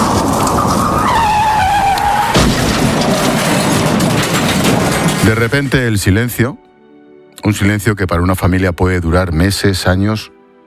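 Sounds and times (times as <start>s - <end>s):
car braking hard with tires skidding on a road: 0.0s - 4.9s
steady engine and road noise: 0.0s - 6.2s
speech: 5.3s - 6.7s, 7.4s - 10.4s.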